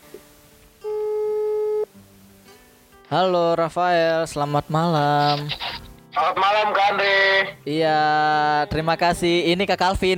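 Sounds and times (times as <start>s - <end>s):
telephone line tone while calling a listener: 0.8s - 1.9s
speech: 3.1s - 10.1s.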